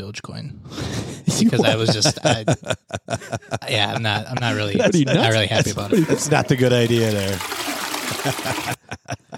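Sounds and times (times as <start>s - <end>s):
speech: 0.0s - 9.3s
laughter: 0.9s - 9.3s
toilet flushing: 5.3s - 8.8s.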